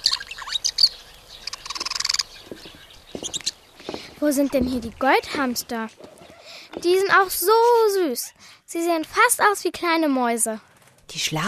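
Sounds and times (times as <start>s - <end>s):
budgerigars chirping in a pet shop: 0.0s - 5.0s
speech: 4.2s - 6.1s, 6.8s - 11.4s.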